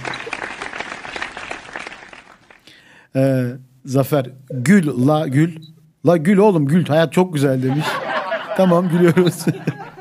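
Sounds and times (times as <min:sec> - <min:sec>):
small group applause: 0:00.0 - 0:02.8
speech: 0:03.1 - 0:08.0, 0:08.6 - 0:09.9
laughter: 0:07.6 - 0:09.9.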